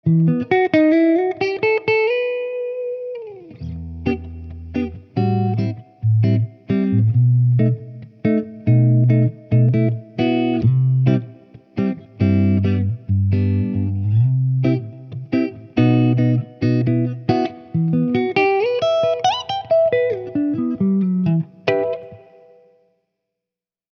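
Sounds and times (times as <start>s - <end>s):
Schecter electric guitar through a Marshall TSL100 amplifier: 0.0s - 22.7s.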